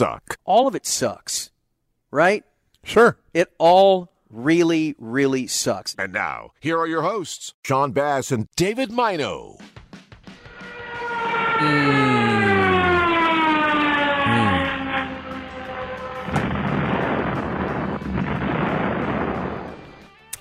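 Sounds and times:
speech: 0.0s - 1.5s, 2.1s - 9.8s, 11.6s - 12.2s
plane engine whine diving downward in pitch: 10.4s - 19.8s
roaring rumbling wash of noise after plane crash: 10.4s - 19.9s
booming plane crash impact: 14.8s - 20.0s.

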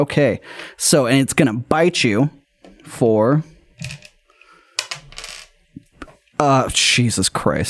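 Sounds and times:
speech: 0.0s - 4.0s, 6.4s - 7.6s
dice clattering across a hard tabletop: 3.8s - 4.2s, 4.8s - 5.6s.

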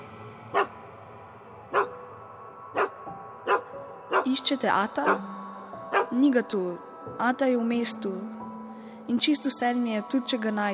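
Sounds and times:
dog barking in short sharp bursts: 1.7s - 2.0s, 2.8s - 4.3s, 5.9s - 6.1s
speech: 4.2s - 5.4s, 6.1s - 8.4s, 9.1s - 10.7s.

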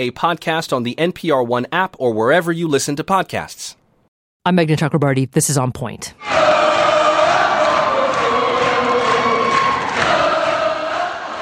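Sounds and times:
speech: 0.0s - 3.8s, 4.4s - 6.6s
crowd of teachers cheering inside the West Virginia State Capitol after winning a pay raise: 6.2s - 11.4s.

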